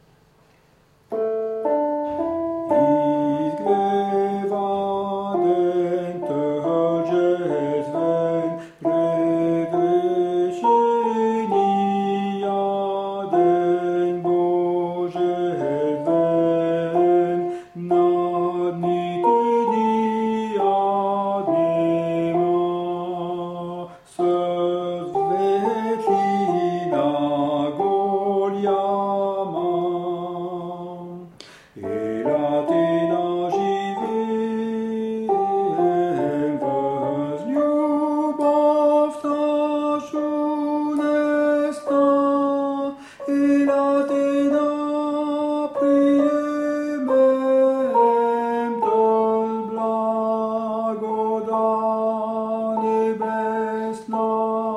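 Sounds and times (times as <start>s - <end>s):
tenor chanting in SATB choir setting: 1.1s - 54.7s.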